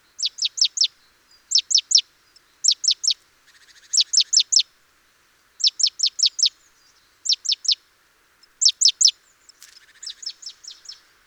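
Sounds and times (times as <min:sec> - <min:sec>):
great tit calls, Parus major: 0:00.2 - 0:04.6, 0:05.6 - 0:06.6, 0:07.2 - 0:07.8, 0:08.4 - 0:11.2.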